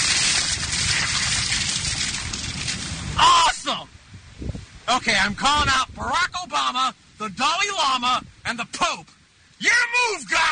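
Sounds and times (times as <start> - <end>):
bucket of ice water dumped over a person's head: 0.0 - 3.2
speech: 4.9 - 10.5.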